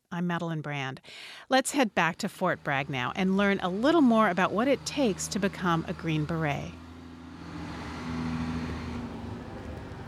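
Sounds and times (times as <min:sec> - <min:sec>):
speech: 0:00.2 - 0:06.8
unarmored utility truck engine rumbling while driving by: 0:01.6 - 0:10.0
broadband road noise: 0:02.0 - 0:10.0.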